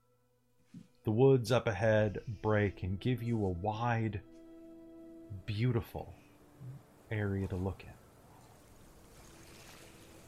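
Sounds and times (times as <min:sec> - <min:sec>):
speech: 0:01.0 - 0:04.3, 0:05.3 - 0:08.0
faint distant moving water: 0:04.3 - 0:10.2.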